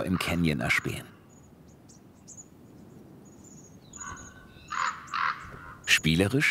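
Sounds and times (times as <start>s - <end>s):
speech: 0.0s - 1.2s, 6.0s - 6.4s
common ravens croaking in a great canyon: 0.0s - 1.3s, 3.6s - 6.4s.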